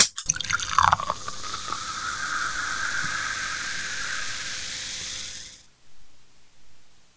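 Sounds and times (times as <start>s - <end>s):
soda: 0.0s - 5.7s.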